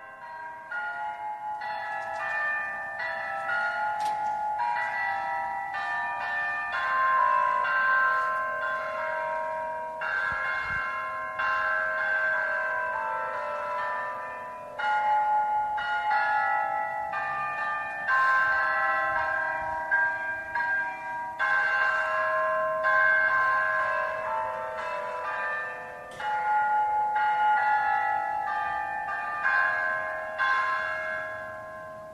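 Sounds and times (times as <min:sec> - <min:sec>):
eight clock tower bells tuned to musical notes chiming a melody: 0:00.0 - 0:32.1.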